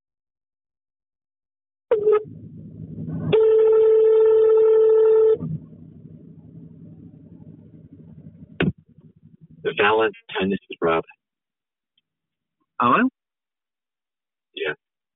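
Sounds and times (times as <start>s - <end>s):
faint telephone line noise: 1.9s - 11.1s
telephone dial tone: 3.3s - 5.4s
speech: 9.8s - 11.2s, 12.8s - 13.2s, 14.6s - 14.8s.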